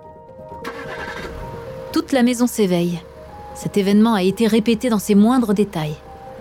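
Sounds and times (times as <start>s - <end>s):
convertible car engine cranking, starting and idling: 0.4s - 6.4s
speech: 2.0s - 6.0s.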